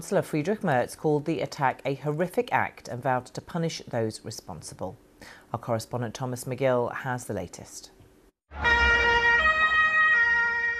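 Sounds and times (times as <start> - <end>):
speech: 0.0 - 9.0
police siren blaring in shifting tones: 8.5 - 10.7.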